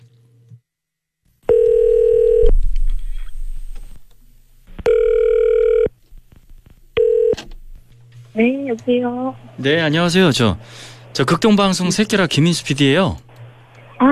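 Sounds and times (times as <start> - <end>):
phone line ringback tone: 1.5 - 2.5, 4.8 - 5.9, 7.0 - 7.4
speech: 8.4 - 13.3.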